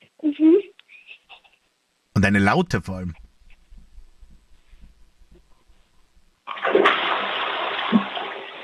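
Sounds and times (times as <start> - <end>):
speech: 0.2 - 0.6, 2.3 - 3.2
faint low thumping: 3.1 - 6.4
toilet flushing with a gurgling roar of rushing water: 6.5 - 8.6.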